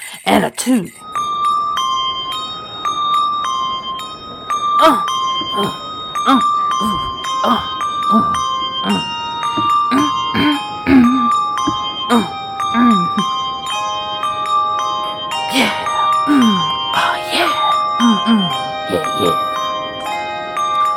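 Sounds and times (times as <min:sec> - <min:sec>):
many bells chiming a dance melody: 0:00.9 - 0:20.9
vocal sounds: 0:04.8 - 0:11.3, 0:12.1 - 0:13.3, 0:15.5 - 0:19.6.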